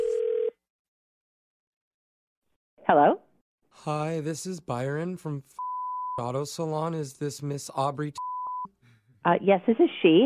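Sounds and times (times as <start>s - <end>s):
electronic ringback tone from an outgoing telephone call: 0.0s - 0.6s
speech: 3.8s - 8.3s, 9.2s - 10.2s.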